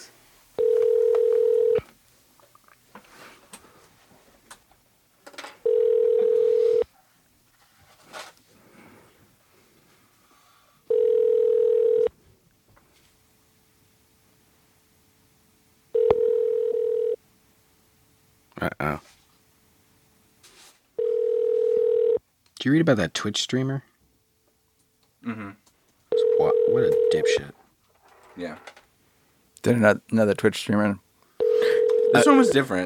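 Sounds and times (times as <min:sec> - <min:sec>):
telephone tones from a call placed to a voice booth phone: 0:00.6 - 0:01.9, 0:05.6 - 0:06.9, 0:10.9 - 0:12.1, 0:15.9 - 0:17.2, 0:21.0 - 0:22.2, 0:26.1 - 0:27.4, 0:31.4 - 0:32.7
speech: 0:22.7 - 0:23.9, 0:29.7 - 0:31.0, 0:32.1 - 0:32.8.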